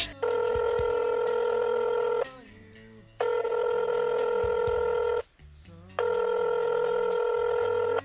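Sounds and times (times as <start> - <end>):
electronic telephone ring tones: 0.0 - 2.3, 3.2 - 5.2, 6.0 - 8.0.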